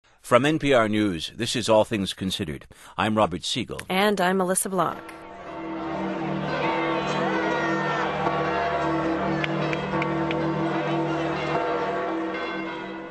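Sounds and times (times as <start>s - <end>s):
speech: 0.3s - 5.2s
church bells ringing at the Vatican for the election of a new pope: 5.0s - 13.0s
large crowd cheering and shouting at the Vatican: 5.2s - 13.0s.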